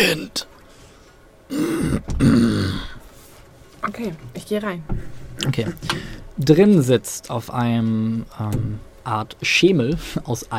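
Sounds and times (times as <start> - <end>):
speech: 0.0 - 0.5, 3.9 - 10.5
narrator imitating a hoarse raspy cough: 1.5 - 2.9.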